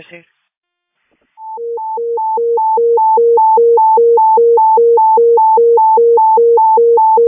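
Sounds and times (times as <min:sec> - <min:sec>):
speech: 0:00.0 - 0:00.4
hi-lo dispatch paging alert for fire investigators to a structure fire: 0:01.4 - 0:07.2.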